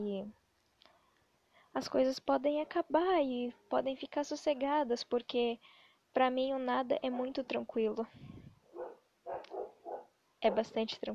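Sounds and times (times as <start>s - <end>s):
speech: 0.0s - 0.4s, 1.8s - 8.4s, 10.4s - 11.1s
dog barking: 8.7s - 10.8s.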